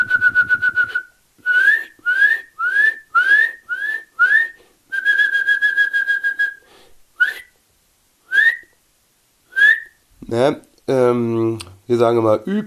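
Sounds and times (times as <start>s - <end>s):
Eurasian nuthatch giving whistled calls and trills: 0.0s - 6.6s, 8.3s - 8.7s, 9.5s - 10.0s
speech: 10.3s - 12.6s.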